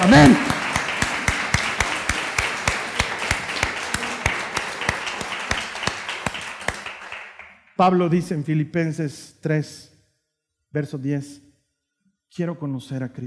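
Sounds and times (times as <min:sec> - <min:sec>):
continuous wash of audience noise: 0:00.0 - 0:07.4
crowd applauding in steady rhythmic unison: 0:00.0 - 0:07.7
speech: 0:00.1 - 0:00.5, 0:07.8 - 0:09.9, 0:10.7 - 0:11.4, 0:12.3 - 0:13.2.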